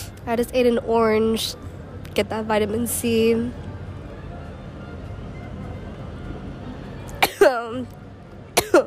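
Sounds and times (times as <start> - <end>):
speech: 0.2 - 3.6, 7.7 - 8.0
person coughing with raspy voiced trail: 7.2 - 7.7, 8.6 - 8.8.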